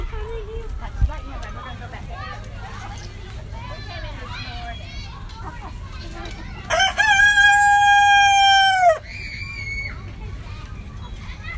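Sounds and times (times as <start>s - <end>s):
rooster crowing: 6.7s - 9.0s.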